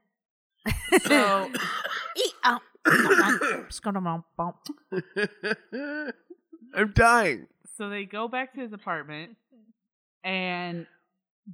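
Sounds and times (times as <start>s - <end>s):
laughter: 0.7s - 2.3s, 2.9s - 3.6s, 4.7s - 7.4s
man coughing in a rough fit: 0.7s - 3.8s, 5.0s - 5.6s, 6.8s - 7.4s
speech: 0.9s - 9.4s, 10.2s - 11.5s.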